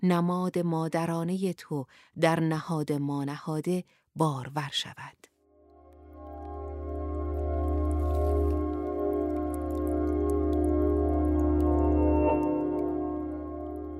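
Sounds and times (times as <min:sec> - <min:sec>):
speech: 0:00.0 - 0:05.3
water dripping in a cave: 0:05.7 - 0:13.9
steady low resonant drone: 0:05.9 - 0:13.9.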